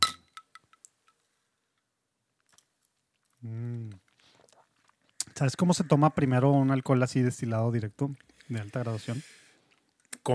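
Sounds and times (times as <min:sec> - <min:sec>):
glasses clinking in a toast: 0:00.0 - 0:00.6
speech: 0:03.4 - 0:04.0, 0:05.4 - 0:09.4.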